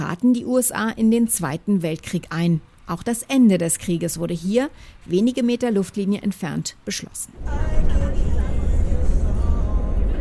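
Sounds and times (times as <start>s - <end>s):
speech: 0.1s - 8.3s
bus engine rumbling as it drives toward a battleship at Pearl Harbor: 7.4s - 10.1s.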